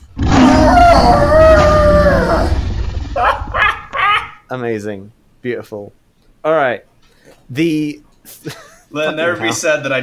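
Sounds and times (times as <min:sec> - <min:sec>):
person imitating a monster's roar: 0:00.1 - 0:02.8
speech: 0:04.5 - 0:06.9, 0:07.5 - 0:10.0.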